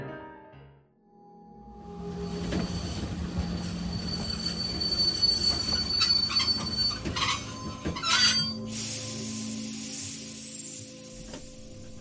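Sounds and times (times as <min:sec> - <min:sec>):
train wheels squealing rolling into a station: 0:01.9 - 0:09.3
low rumbling of train carriages: 0:02.0 - 0:08.6
train air brakes hissing: 0:08.5 - 0:11.8.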